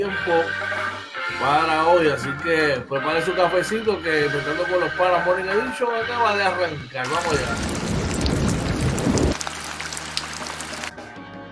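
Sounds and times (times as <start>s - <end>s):
speech: 0.0s - 7.8s
heavy rain falling: 7.1s - 10.9s.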